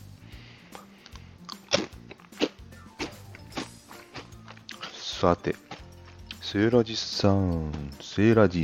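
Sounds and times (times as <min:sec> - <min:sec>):
chewing crunchy Calbee Plus potato chips: 0:01.0 - 0:06.4
speech: 0:05.2 - 0:05.7, 0:06.5 - 0:08.6.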